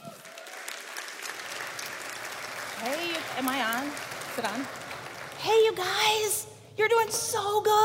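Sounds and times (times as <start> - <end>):
audience applause in a church: 0.0 - 6.0
speech: 2.8 - 4.8, 5.4 - 7.8.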